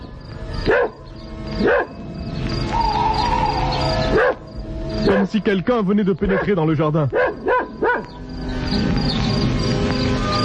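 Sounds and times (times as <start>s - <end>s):
chorus of chirping crickets: 0.0s - 10.4s
dog barking: 0.6s - 1.0s, 1.6s - 2.0s, 4.1s - 4.4s, 5.1s - 5.3s, 6.3s - 8.2s
speech: 5.3s - 7.2s.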